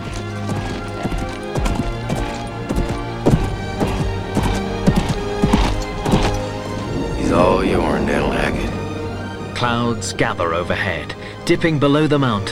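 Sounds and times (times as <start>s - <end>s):
black horse hooves galloping over fields: 0.0s - 10.3s
sustained tonal hum: 3.6s - 11.4s
speech: 9.6s - 12.4s.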